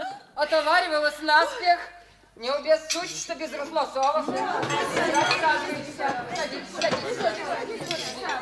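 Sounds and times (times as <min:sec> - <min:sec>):
guests chatting while taking seats at a table: 0:00.0 - 0:08.4
speech: 0:00.4 - 0:08.4
dishes and cutlery clinking: 0:02.9 - 0:08.4.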